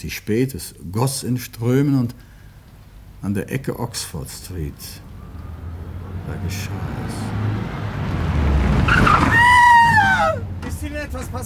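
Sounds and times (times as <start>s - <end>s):
speech: 0.0s - 2.3s, 3.2s - 5.1s, 6.3s - 7.8s, 10.8s - 11.4s
car rumbling: 2.1s - 11.4s
car braking hard with skidding tyres screeching: 2.5s - 11.4s.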